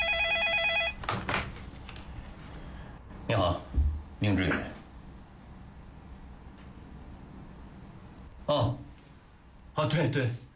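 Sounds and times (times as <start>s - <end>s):
telephone ringing with a warbling electronic tone: 0.0s - 1.0s
speech: 3.3s - 4.8s, 9.9s - 10.4s.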